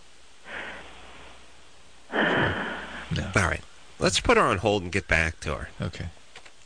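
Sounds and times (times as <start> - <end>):
sleeping woman breathing heavily into a phone: 0.4 - 1.4, 2.1 - 3.2
speech: 3.4 - 6.2.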